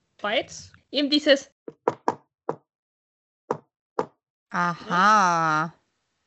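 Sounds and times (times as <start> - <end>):
speech: 0.2 - 1.6, 4.5 - 5.8
sharp knocks: 1.7 - 2.2.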